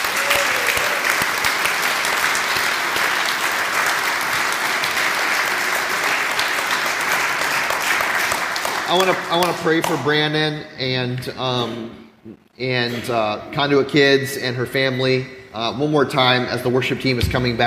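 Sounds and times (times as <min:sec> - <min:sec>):
church audience applauding: 0:00.0 - 0:10.0
speech: 0:08.9 - 0:17.6.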